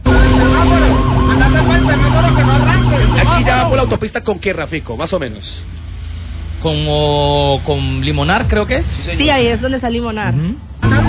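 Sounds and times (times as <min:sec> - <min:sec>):
police motorcycle patrol siren wailing during a vehicle chase: 0:00.0 - 0:04.0
low rumble of engine and traffic noise: 0:00.0 - 0:11.0
speech: 0:03.9 - 0:05.8, 0:06.6 - 0:11.0.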